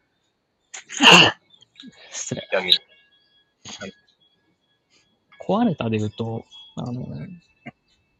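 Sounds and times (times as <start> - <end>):
loud sneeze: 0.8 - 1.4
speech: 1.0 - 2.9, 3.7 - 4.0, 5.5 - 7.8.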